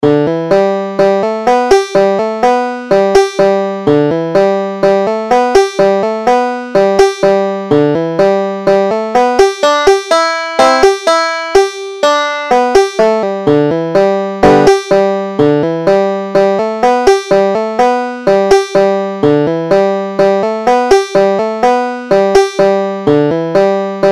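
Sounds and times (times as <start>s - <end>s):
banjo tune: 0.0s - 24.1s.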